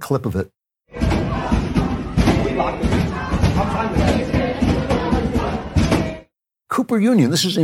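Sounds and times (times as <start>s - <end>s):
speech: 0.1s - 1.0s, 2.6s - 4.4s, 6.8s - 7.6s
banging on a locked library door: 0.9s - 6.3s
crowd of students shouting and clamoring: 0.9s - 6.3s.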